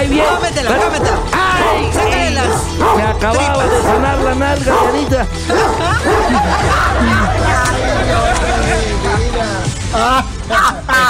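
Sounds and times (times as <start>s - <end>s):
people chattering: 0.0s - 9.7s
laughter: 0.0s - 11.0s
dog barking with higher yips: 0.1s - 6.4s
speech: 2.4s - 8.6s.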